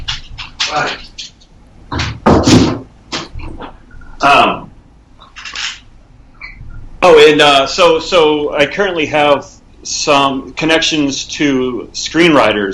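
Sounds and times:
speech: 0.7s - 1.3s, 7.3s - 12.7s
thumps on a door: 1.9s - 3.7s.

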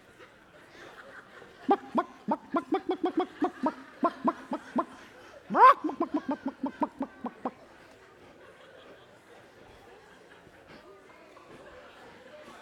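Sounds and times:
laughter: 0.6s - 10.8s
person imitating a clucking chicken: 1.7s - 7.6s.

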